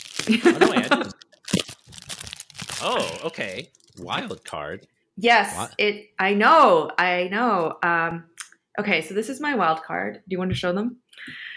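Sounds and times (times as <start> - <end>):
folded gift wrapper paper rustling: 0.0 - 4.0
laughter: 0.3 - 1.1, 2.8 - 4.8
speech: 0.3 - 1.1, 2.8 - 11.5.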